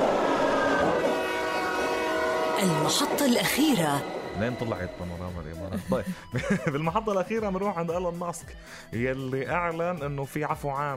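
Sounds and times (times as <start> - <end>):
metro train running with a loud steady rumble: 0.0 - 5.7
sustained tonal whine of a metro train: 0.0 - 5.7
speech: 2.6 - 10.9
laughter: 5.6 - 7.1.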